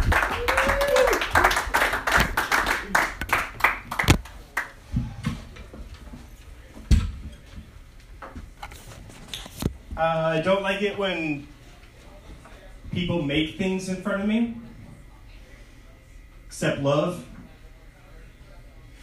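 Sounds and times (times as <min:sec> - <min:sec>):
crowd cheering: 0:00.0 - 0:04.1
audience applause: 0:00.0 - 0:04.8
speech: 0:10.4 - 0:11.5, 0:13.0 - 0:14.6, 0:16.6 - 0:17.3.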